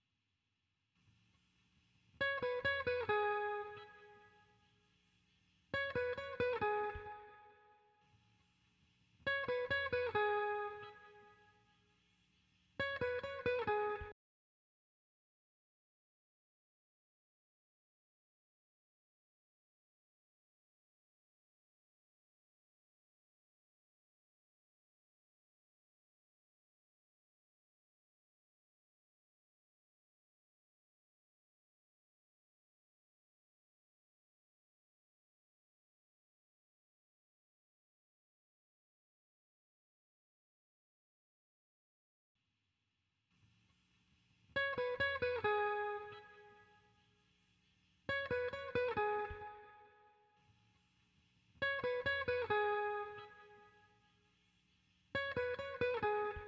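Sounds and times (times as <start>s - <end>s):
guitar layer loop in E major: 2.2s - 4.4s, 5.7s - 7.5s, 9.2s - 11.5s, 12.8s - 14.1s, 44.6s - 46.8s, 48.1s - 49.9s, 51.6s - 53.8s, 55.1s - 56.4s.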